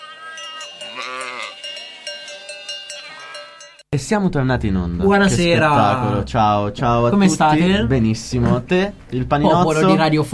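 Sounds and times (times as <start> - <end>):
single sheep bleating: 0.0 - 1.7
faint bell-like ringing: 0.0 - 3.9
speech: 1.0 - 1.4, 3.9 - 10.3.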